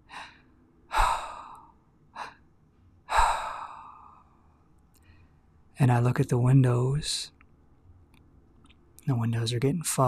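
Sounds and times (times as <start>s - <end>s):
heavy breathing: 0.0s - 2.5s, 3.1s - 4.4s
speech: 5.8s - 7.4s, 9.1s - 10.0s.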